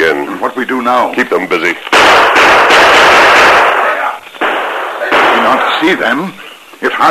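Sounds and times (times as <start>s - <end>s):
speech: 0.9s - 3.0s, 5.8s - 7.0s
gunfire in a radio drama shootout at a bridge over a river: 1.9s - 6.3s.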